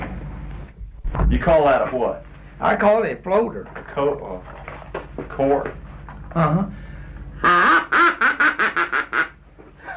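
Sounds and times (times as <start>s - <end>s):
speech: 1.3s - 4.6s, 5.4s - 6.8s
duck call blown making quacks: 7.4s - 9.4s.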